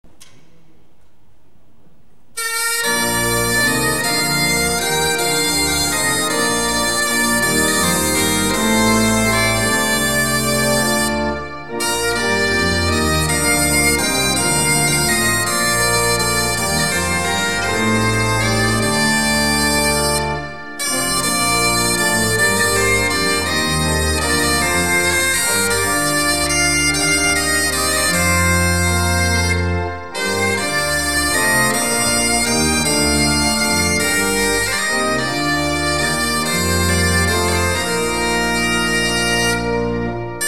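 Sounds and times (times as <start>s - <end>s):
organ playing: 2.4s - 40.4s.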